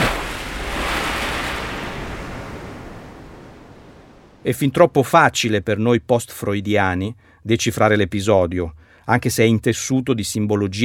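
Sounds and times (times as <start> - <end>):
stormy sea waves: 0.0 - 4.5
speech: 4.4 - 10.8.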